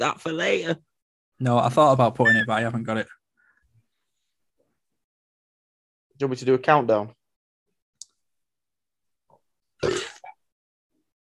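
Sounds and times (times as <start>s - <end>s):
speech: 0.0s - 3.2s, 6.2s - 7.2s
short loud burp with gurgling tail: 9.8s - 10.4s.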